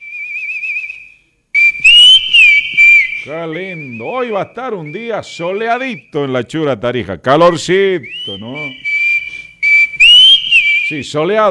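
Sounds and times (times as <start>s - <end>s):
person whistling a tune: 0.0s - 5.8s, 8.0s - 11.0s
speech: 3.3s - 8.9s, 10.9s - 11.4s.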